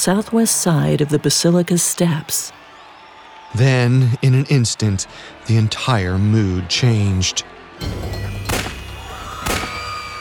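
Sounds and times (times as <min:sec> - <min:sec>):
speech: 0:00.0 - 0:02.6, 0:03.5 - 0:08.3
gunshots: 0:08.3 - 0:10.1.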